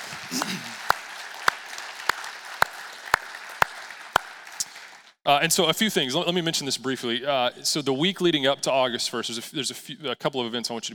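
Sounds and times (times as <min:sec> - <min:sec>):
church audience applauding: 0:00.0 - 0:05.2
sharp rhythmic claps: 0:00.0 - 0:05.2
speech: 0:05.3 - 0:10.9.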